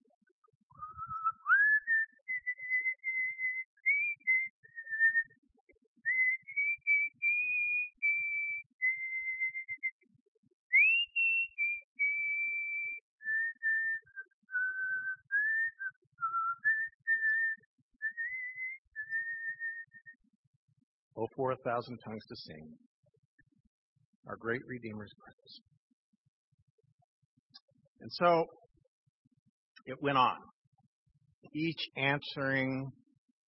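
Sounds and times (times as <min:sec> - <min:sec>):
person whistling an old hymn melody: 0:00.8 - 0:05.3, 0:06.1 - 0:09.9, 0:10.8 - 0:20.2
speech: 0:21.2 - 0:22.9, 0:24.3 - 0:25.7, 0:28.1 - 0:28.6, 0:29.9 - 0:30.5, 0:31.6 - 0:33.0.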